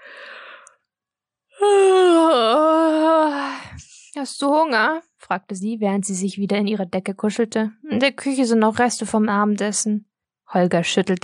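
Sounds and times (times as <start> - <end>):
woman in bed giving a long drawn-out yawn: 1.6 - 3.6
speech: 4.2 - 11.2.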